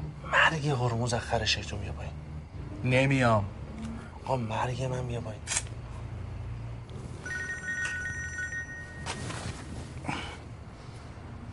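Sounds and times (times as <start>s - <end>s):
noisy background: 0.0s - 11.5s
speech: 0.5s - 3.6s, 4.2s - 5.8s
telephone ringing with electronic tones, call declined: 7.2s - 9.5s.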